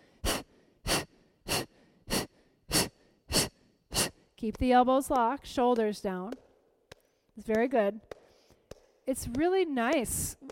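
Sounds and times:
forceful exhales through the mouth in a breathing exercise: 0.0s - 4.4s
speech: 4.4s - 6.4s, 7.4s - 8.2s, 9.1s - 10.4s.

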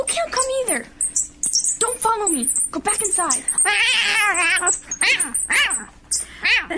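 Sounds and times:
speech: 0.1s - 1.0s, 2.1s - 6.7s
cat yowling with wavering cries and wails: 3.6s - 6.7s.

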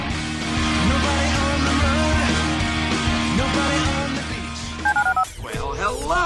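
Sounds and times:
music: 0.0s - 6.2s
telephone keypad dialing tones: 4.9s - 5.3s.

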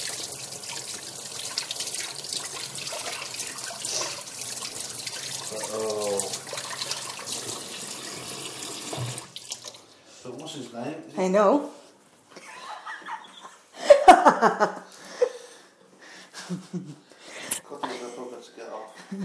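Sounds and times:
shower water running in a flat: 0.0s - 10.6s
speech: 10.8s - 11.8s, 14.4s - 14.8s
laughter: 12.4s - 15.4s, 16.4s - 17.0s, 19.0s - 19.2s.

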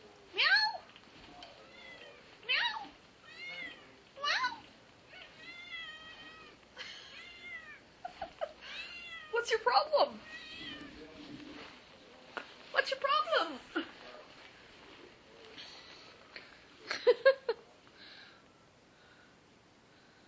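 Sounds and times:
faint murmuring: 0.0s - 17.0s
cat meowing: 1.6s - 7.8s, 8.6s - 9.4s, 10.2s - 11.0s
speech: 9.5s - 10.4s.

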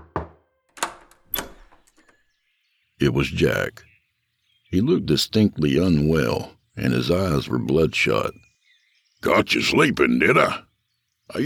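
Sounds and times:
firm insistent knocks on a door: 0.0s - 2.0s
speech: 3.0s - 3.9s, 4.7s - 8.5s, 9.2s - 10.7s.

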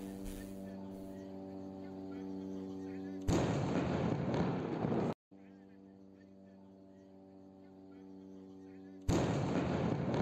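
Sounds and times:
steady buzzing drone: 0.0s - 10.2s
bomb blasts from nighttime airstrikes in the Gaza Strip: 3.3s - 5.2s, 9.1s - 10.2s.

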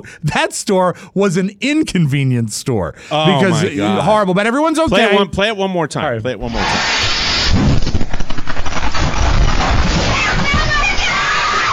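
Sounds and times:
speech: 0.0s - 7.6s
loud explosion at a store: 6.5s - 11.7s
concrete and paver debris flying and crashing down: 8.0s - 11.7s.

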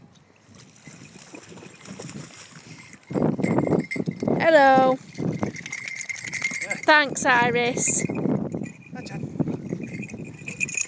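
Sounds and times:
light wind noise: 0.0s - 10.8s
dogs paddling and splashing in a lake: 0.5s - 3.0s
speech: 4.5s - 5.0s, 6.9s - 8.2s.

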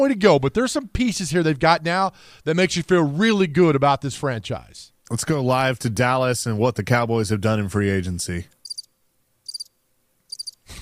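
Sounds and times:
speech: 0.0s - 8.6s
cricket chirping sound effect from a soundboard: 8.6s - 9.7s, 10.3s - 10.6s.

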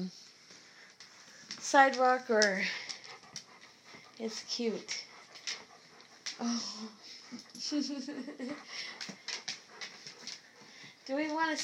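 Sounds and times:
speech: 1.7s - 2.9s, 4.2s - 5.0s, 6.4s - 9.0s, 11.1s - 11.6s
puppy panting: 1.8s - 11.6s.

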